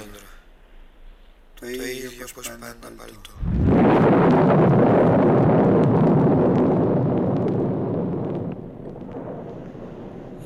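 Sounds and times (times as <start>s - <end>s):
speech: 1.6s - 3.7s
thunder rumbling: 3.4s - 10.4s.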